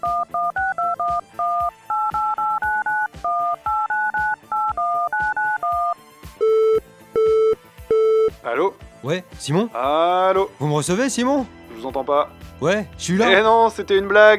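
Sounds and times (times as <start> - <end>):
telephone touch-tone dialing beeps while calling a backup line: 0.0 - 8.3
speech: 9.0 - 14.3.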